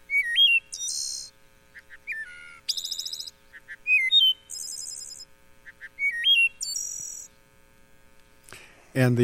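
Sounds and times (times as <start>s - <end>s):
wood thrush singing flute-like phrases in a forest: 0.1s - 7.3s.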